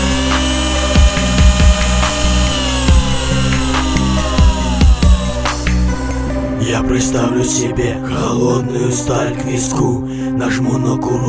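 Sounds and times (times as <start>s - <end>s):
electric drill whirring: 0.0s - 6.4s
speech: 6.8s - 11.2s.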